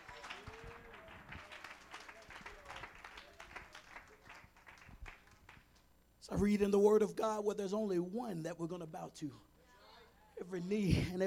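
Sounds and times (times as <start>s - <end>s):
audience at a church service clapping hands: 0.0s - 5.6s
speech: 6.3s - 9.5s, 10.5s - 11.2s.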